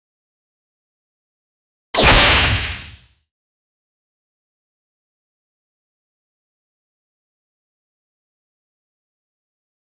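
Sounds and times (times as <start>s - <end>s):
fast fiery slash: 2.0s - 3.0s.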